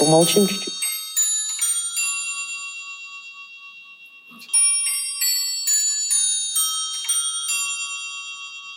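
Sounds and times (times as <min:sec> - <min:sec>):
antique clock chiming a three-quarter-hour melody: 0:00.0 - 0:08.7
speech: 0:00.1 - 0:00.8.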